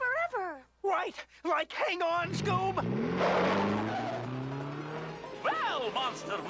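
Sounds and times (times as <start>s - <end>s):
speech: 1.0s - 4.2s, 5.8s - 6.4s
race car engines roaring: 2.2s - 6.4s
race car tires squealing and skidding: 2.2s - 6.4s.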